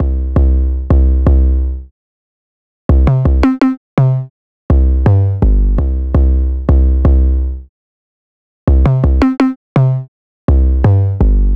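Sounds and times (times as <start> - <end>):
808 drum machine bass in C minor: 0.0 - 1.6, 2.9 - 7.4, 8.7 - 11.5.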